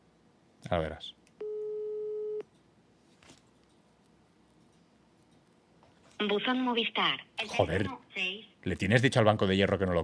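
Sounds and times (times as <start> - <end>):
speech: 0.7 - 1.2, 6.2 - 10.0
steady telephone ringback tone: 1.4 - 2.4.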